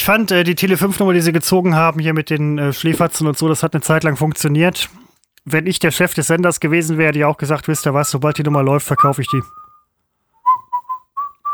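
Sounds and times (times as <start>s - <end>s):
speech: 0.0s - 9.7s
person whistling a short tune: 7.8s - 11.5s.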